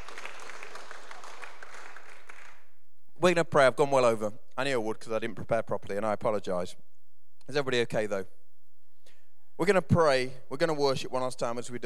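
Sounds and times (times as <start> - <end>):
large crowd applauding: 0.0 - 2.7
speech: 3.2 - 6.9, 7.5 - 8.4, 9.6 - 11.8.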